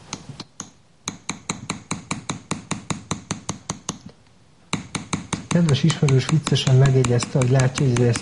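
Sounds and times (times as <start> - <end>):
small hammer tapping metal to smooth an acanthus leaf ornament: 0.1 - 4.1, 4.7 - 8.2
speech: 5.6 - 8.2.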